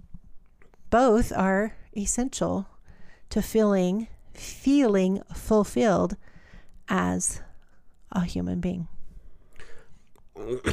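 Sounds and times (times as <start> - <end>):
speech: 0.9 - 2.7, 3.3 - 6.3, 6.9 - 7.5, 8.1 - 8.9, 10.4 - 10.7
person coughing and clearing their throat: 9.6 - 10.7.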